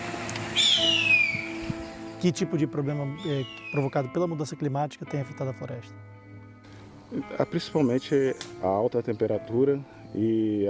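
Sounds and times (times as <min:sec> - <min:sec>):
harpy eagle chick whistling call: 0:00.6 - 0:01.6, 0:03.2 - 0:04.0
speech: 0:02.2 - 0:06.2, 0:07.1 - 0:10.6.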